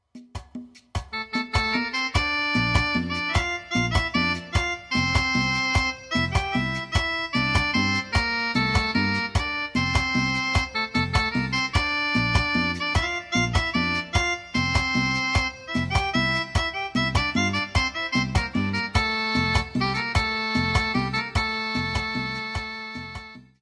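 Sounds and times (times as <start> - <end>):
chilena mariachi rhythms: 0.7 - 23.6.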